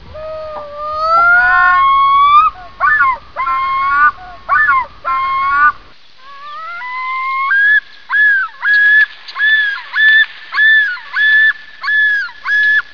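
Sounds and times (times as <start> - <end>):
common loon yodel: 0.0 - 12.8.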